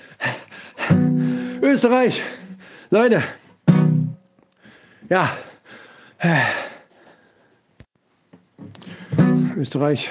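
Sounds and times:
person gasping for air: 0.0 - 1.6, 4.6 - 7.3, 8.8 - 9.5
speech: 1.7 - 3.4, 5.1 - 5.5, 6.2 - 6.6, 9.6 - 10.0.

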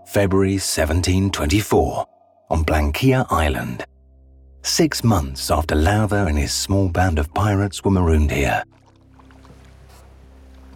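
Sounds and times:
speech: 0.1 - 3.9, 4.6 - 8.8
small rowboats being rowed up to a beach: 8.6 - 10.7.

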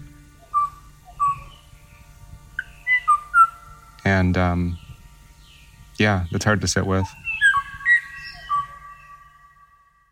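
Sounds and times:
lone bird giving a flute-like whistled mating call: 0.4 - 1.7, 2.6 - 3.6, 7.0 - 9.8
speech: 4.1 - 4.8, 6.0 - 7.2.

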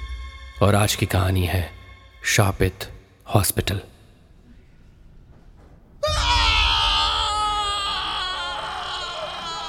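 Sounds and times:
speech: 0.6 - 3.9
loud high-pitched scream: 6.0 - 9.6.

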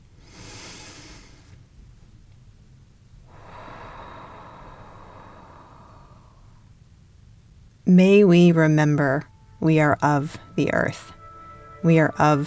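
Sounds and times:
group taking a deep breath in unison: 0.2 - 1.6, 3.3 - 6.7
speech: 7.9 - 11.2, 11.8 - 12.4.

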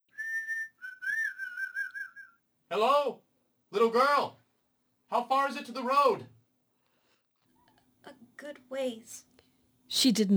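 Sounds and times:
young man whistling: 0.1 - 2.4
speech: 2.7 - 4.4, 5.1 - 6.3, 8.4 - 9.3, 9.9 - 10.3.

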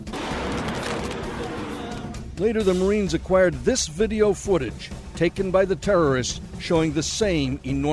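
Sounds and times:
suicide truck bomb explosion at a checkpoint in Ramadi Iraq: 0.0 - 2.2
speech: 2.4 - 7.9.

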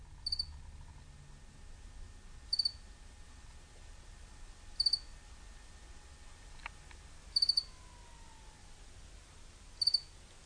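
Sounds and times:
quiet low hum: 0.0 - 10.4
crickets chirping in short trills: 0.2 - 0.5, 2.5 - 2.8, 4.8 - 5.1, 7.3 - 8.5, 9.8 - 10.1.

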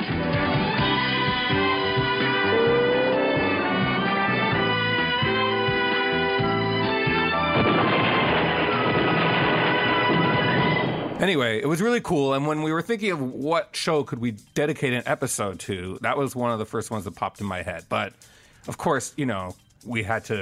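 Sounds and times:
loud brassy TV show theme tune: 0.0 - 11.4
booming explosion: 7.5 - 11.3
speech: 11.2 - 20.3.

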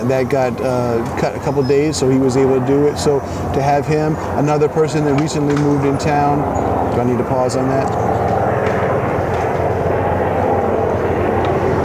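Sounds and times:
helicopter engine and rotor drone overhead: 0.0 - 11.8
speech: 0.1 - 8.2.

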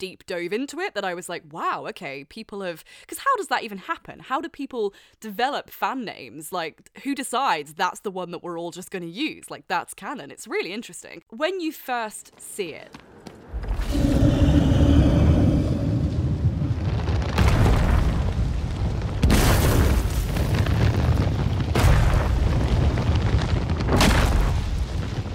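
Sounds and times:
speech: 0.0 - 14.0
deep booming footfalls of a giant creature: 13.0 - 25.3
constant low rumble: 13.5 - 25.3
brief tonal groan: 13.6 - 17.0.

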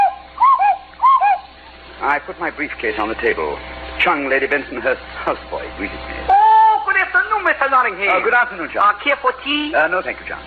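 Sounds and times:
cuckoo clock calling two-note cuckoo: 0.0 - 1.6
speech: 2.1 - 6.4, 7.5 - 10.4.

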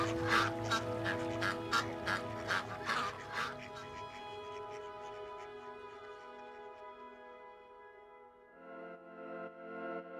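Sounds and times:
ducks quacking: 0.0 - 6.8
sustained musical tones: 0.0 - 10.1.

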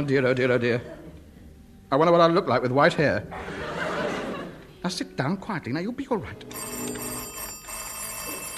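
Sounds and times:
speech: 0.0 - 1.0, 1.9 - 3.6, 4.8 - 7.1
laughter: 3.3 - 4.7
telephone bell ringing: 6.5 - 8.5.

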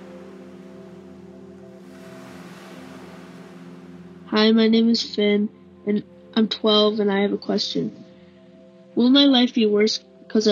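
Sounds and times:
ocean waves washing and breaking: 0.0 - 6.3
low droning hum: 0.0 - 9.1
speech: 4.3 - 8.0, 9.0 - 10.5.

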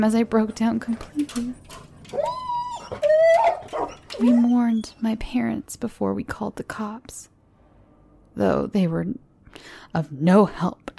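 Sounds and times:
speech: 0.0 - 3.0, 3.7 - 7.3, 8.4 - 10.8
dog whimpering: 1.0 - 5.1.

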